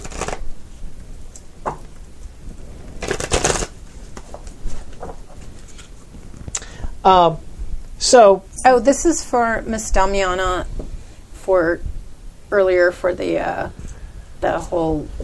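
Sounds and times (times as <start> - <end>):
playing cards being shuffled during a tabletop card game: 0.0 - 0.5, 3.0 - 6.5
card handling rustles: 3.0 - 6.5
speech: 7.1 - 7.4, 8.0 - 10.7, 11.5 - 11.9, 12.5 - 13.8, 14.4 - 15.2.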